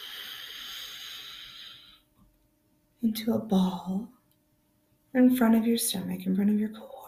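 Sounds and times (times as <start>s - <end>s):
slow deep inhale during a guided relaxation exercise: 0.0s - 2.1s
speech: 3.0s - 4.2s, 5.2s - 7.0s.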